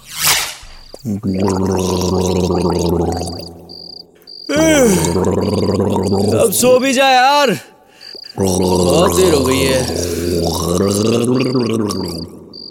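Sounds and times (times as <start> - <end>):
faint cricket-like chirps: 0.2 - 12.6
loud gargling with water: 1.0 - 3.6, 4.5 - 6.7, 8.0 - 12.6
speech: 1.0 - 3.6, 4.5 - 7.7, 8.4 - 12.4.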